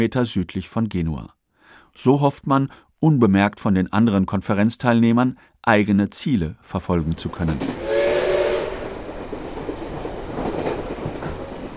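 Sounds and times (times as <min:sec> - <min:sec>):
speech: 0:00.0 - 0:01.4, 0:02.0 - 0:08.0
steam train rolling on rails from Moscow toward Liguria: 0:07.6 - 0:11.7
steam train whistle: 0:07.8 - 0:09.1.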